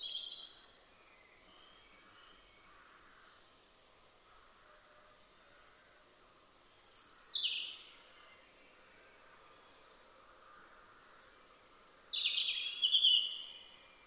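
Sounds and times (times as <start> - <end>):
European robin warbling song: 0.0 - 0.6, 6.7 - 8.0, 11.5 - 13.8
faint background hiss: 0.0 - 14.0.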